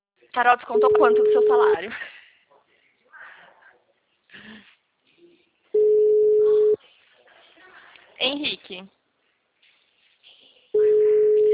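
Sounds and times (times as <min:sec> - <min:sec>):
speech: 0:00.4 - 0:02.1, 0:08.2 - 0:09.0
loud steady telephone busy tone: 0:00.8 - 0:01.8, 0:05.8 - 0:06.8, 0:10.8 - 0:11.5.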